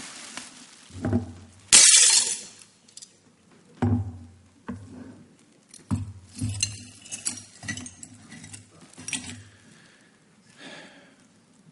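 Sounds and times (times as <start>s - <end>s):
vase shattering: 0.1s - 3.0s, 5.8s - 9.5s
ceramic shards clinking and tinkling as they settle: 5.8s - 9.5s.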